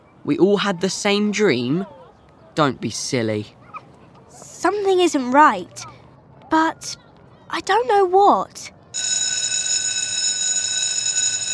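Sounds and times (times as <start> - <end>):
speech: 0.2 - 2.0, 2.6 - 3.6, 4.6 - 9.1
electric school bell ringing at the end of lunchtime: 9.0 - 11.5.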